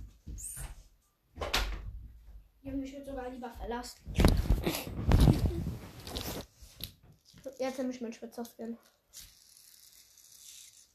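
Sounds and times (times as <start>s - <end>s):
door pushed shut with a thud: 1.4s - 2.0s
speech: 2.8s - 5.0s, 7.6s - 9.3s.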